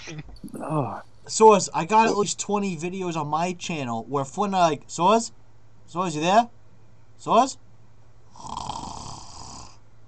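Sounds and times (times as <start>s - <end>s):
speech: 0.1s - 6.6s, 7.2s - 7.6s, 8.4s - 8.8s
person snoring: 8.4s - 9.8s.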